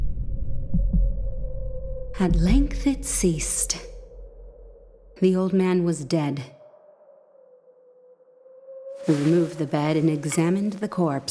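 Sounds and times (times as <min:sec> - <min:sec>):
muffled low heartbeat: 0:00.0 - 0:01.5
steady low rumble: 0:00.0 - 0:07.0
speech: 0:02.2 - 0:03.9, 0:05.2 - 0:06.6, 0:09.0 - 0:11.3.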